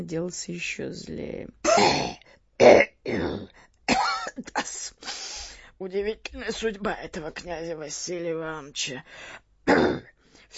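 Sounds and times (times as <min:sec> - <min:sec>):
speech: 0:00.0 - 0:03.7, 0:05.8 - 0:10.5
senator coughing in a coughing fit: 0:01.6 - 0:05.2, 0:09.7 - 0:10.1.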